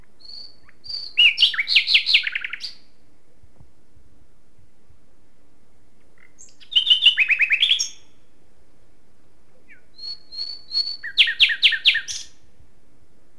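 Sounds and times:
common nightingale Luscinia megarhynchos singing: 0.0 - 2.9, 6.0 - 8.3, 9.5 - 12.5.

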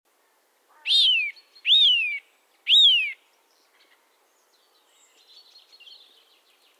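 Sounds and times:
Eurasian nuthatch Sitta europaea giving loud rising and sliding whistled calls: 0.8 - 3.2.

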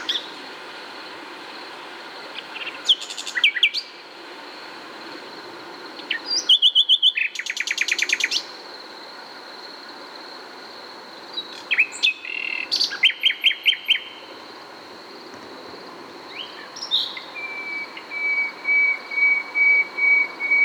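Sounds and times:
common nightingale Luscinia megarhynchos singing: 6.0 - 8.5, 11.3 - 14.3, 16.3 - 20.6.

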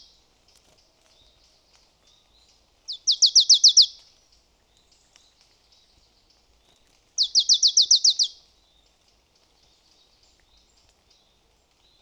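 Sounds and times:
marsh tit Poecile palustris giving rapid high downslurred notes: 2.9 - 4.0, 7.2 - 8.3.

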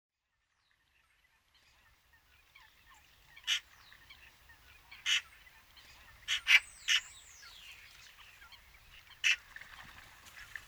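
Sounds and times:
Eurasian magpie Pica pica harsh calls: 5.0 - 5.3, 6.2 - 7.2.

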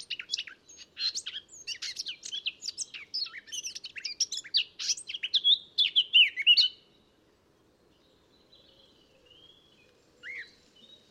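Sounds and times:
Eurasian blackcap Sylvia atricapilla singing: 0.0 - 6.8.

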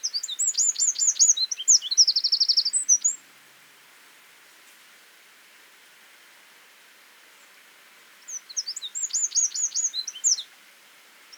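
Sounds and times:
Eurasian wren song: 0.0 - 3.2, 8.3 - 10.5.

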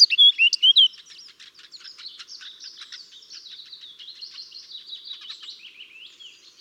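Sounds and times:
Eurasian blackcap Sylvia atricapilla giving loud whistled notes: 0.0 - 0.9.

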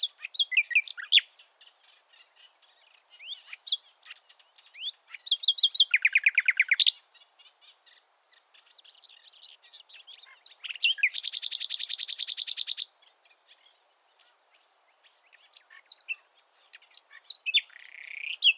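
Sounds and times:
common nightingale Luscinia megarhynchos singing: 0.0 - 18.5.

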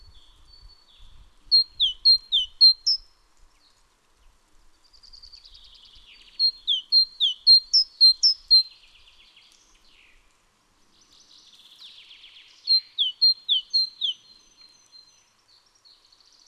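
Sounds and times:
great tit Parus major sharp high calls: 6.4 - 8.7, 12.7 - 14.2.

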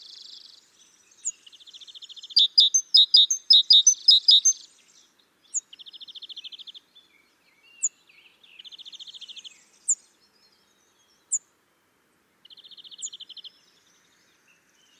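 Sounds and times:
great tit Parus major calling: 2.2 - 4.6.

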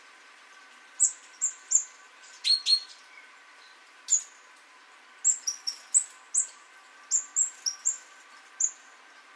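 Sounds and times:
steady faint hiss: 0.0 - 9.3
great tit Parus major uttering rapid thin high call notes: 1.0 - 4.4, 5.2 - 8.9.

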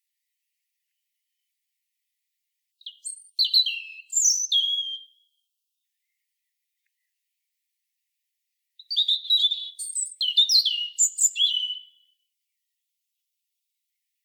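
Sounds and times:
European robin Erithacus rubecula singing: 2.8 - 5.4, 8.8 - 12.2.

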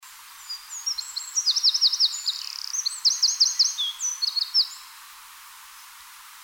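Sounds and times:
Eurasian wren singing: 0.4 - 4.9.

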